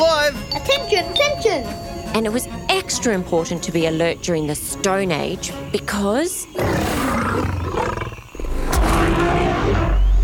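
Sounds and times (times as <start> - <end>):
speech: 0.7 - 7.1
saber-toothed tiger roaring: 6.6 - 10.2.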